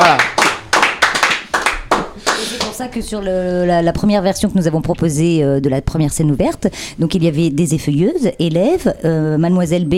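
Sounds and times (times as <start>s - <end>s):
hands clapping: 0.0s - 2.8s
speech: 2.8s - 9.9s.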